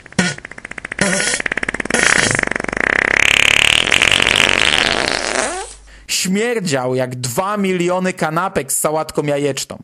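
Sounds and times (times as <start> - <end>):
long loud fart sound effect: 0.0 - 5.8
speech: 6.3 - 9.8.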